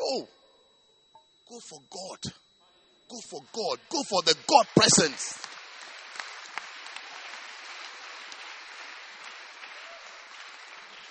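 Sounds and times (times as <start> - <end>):
speech: 0.1 - 0.4, 1.5 - 2.4, 3.1 - 5.6
crowd applauding: 3.1 - 11.1.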